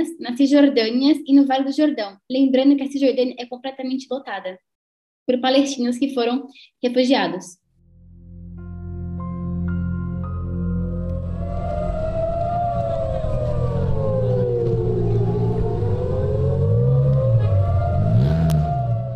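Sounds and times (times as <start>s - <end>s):
speech: 0.0s - 4.7s, 5.3s - 7.6s
air raid siren in Israel warning of an incoming missile attack: 7.9s - 19.1s
constant low rumble: 8.0s - 19.1s.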